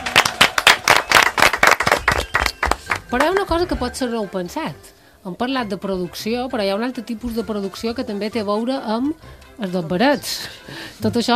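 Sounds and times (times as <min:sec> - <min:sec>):
loud applause from a group: 0:00.0 - 0:03.3
speech: 0:03.1 - 0:11.3.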